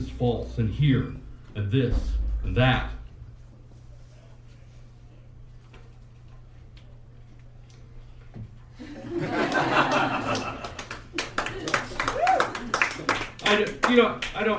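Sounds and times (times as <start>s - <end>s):
speech: 0.0s - 3.0s, 13.5s - 14.5s
audience laughter: 8.8s - 10.9s
audience applause in a large room: 9.2s - 14.5s.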